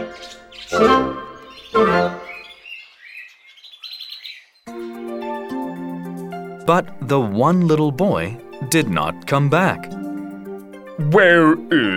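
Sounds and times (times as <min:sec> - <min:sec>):
birds singing in bright rising chirps and whistles: 0:00.0 - 0:05.0
speech: 0:06.7 - 0:10.0, 0:11.0 - 0:11.9.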